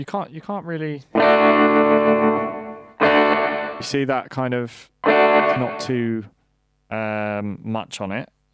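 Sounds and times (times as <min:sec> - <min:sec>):
speech: 0:00.0 - 0:02.6, 0:03.8 - 0:08.4
distorted electric guitar chord through a reverb pedal: 0:01.2 - 0:04.0, 0:05.0 - 0:06.1.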